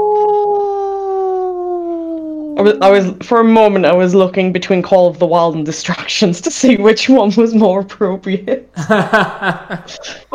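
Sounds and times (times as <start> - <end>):
person imitating a wolf howl: 0.0 - 2.6
speech: 2.6 - 10.3
laughter: 8.8 - 10.2.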